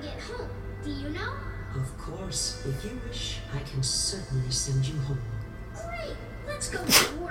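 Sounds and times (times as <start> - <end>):
speech: 0.8 - 7.2
sharp hissy sneeze: 6.8 - 7.2.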